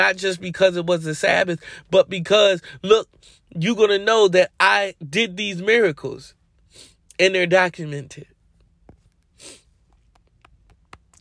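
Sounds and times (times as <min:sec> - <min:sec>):
speech: 0:00.0 - 0:08.3
breathy sniff through the nose: 0:09.4 - 0:09.7.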